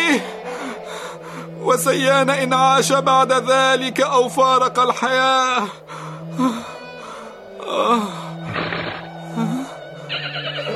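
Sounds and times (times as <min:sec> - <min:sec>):
speech: 0:00.2 - 0:00.4, 0:01.7 - 0:06.7, 0:07.7 - 0:08.2
horse neighing with shrill wavering whinnies: 0:08.5 - 0:09.1, 0:10.1 - 0:10.7
horse snorting breaths: 0:08.5 - 0:09.1.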